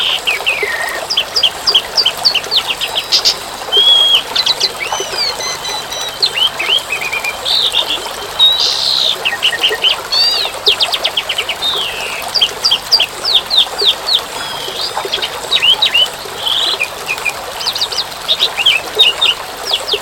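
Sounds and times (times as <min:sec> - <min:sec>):
continuous rainfall hiss: 0:00.0 - 0:19.9
Asian pied starling delivering a long varied song: 0:02.8 - 0:09.2.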